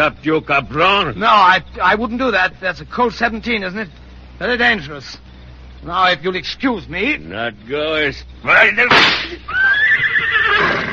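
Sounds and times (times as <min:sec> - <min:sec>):
speech: 0:00.0 - 0:10.0
horse whinnying: 0:09.5 - 0:10.9.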